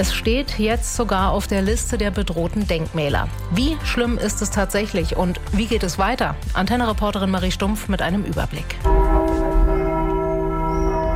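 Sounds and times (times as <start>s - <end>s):
speech: 0.0s - 9.0s
newly cast church bells ringing in Frankfurt (Oder): 8.8s - 11.1s.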